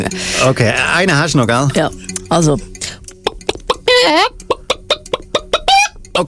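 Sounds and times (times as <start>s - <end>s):
speech: 0.0s - 3.0s
person imitating chicken clucks and squawk: 3.2s - 6.0s.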